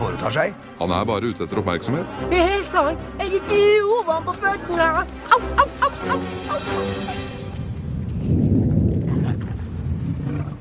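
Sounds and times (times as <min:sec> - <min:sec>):
speech: 0:00.1 - 0:07.4
laughter: 0:05.2 - 0:07.6
deep broad rumble: 0:06.8 - 0:10.5.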